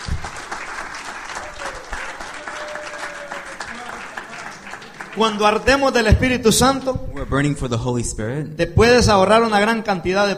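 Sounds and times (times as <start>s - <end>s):
congregation applauding during a youth church service: 0.0s - 7.3s
speech: 5.2s - 10.3s.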